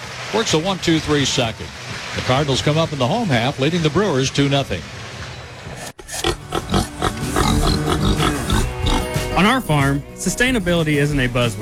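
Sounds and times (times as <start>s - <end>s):
speech: 0.3s - 5.0s, 9.4s - 11.6s
pigs grunting and oinking on a farm in Middletown Missouri: 5.8s - 9.5s.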